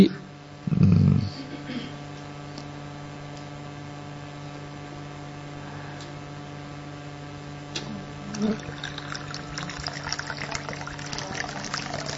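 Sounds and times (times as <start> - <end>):
speech: 0.0 - 0.2
constant low electrical hum: 0.0 - 12.1
water pouring into a container: 8.3 - 12.1.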